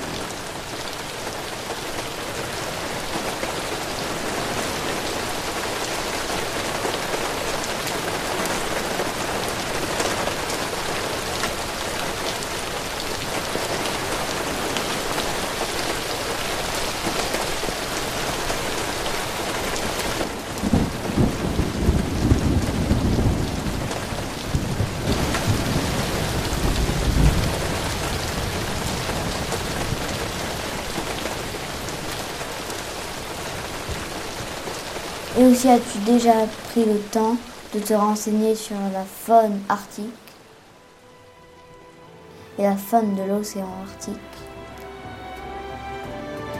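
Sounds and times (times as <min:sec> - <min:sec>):
steady rain hissing on surfaces: 0:00.0 - 0:46.5
low rumbling thunder: 0:20.3 - 0:32.2
speech: 0:35.5 - 0:40.2, 0:42.6 - 0:44.4.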